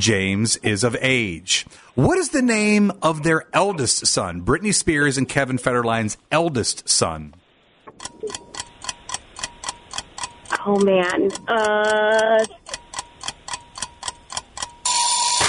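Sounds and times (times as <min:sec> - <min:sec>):
speech: 0:00.0 - 0:08.4, 0:10.6 - 0:12.7
quiz countdown timer ticking: 0:08.0 - 0:15.0
loud harsh burst: 0:14.8 - 0:15.4.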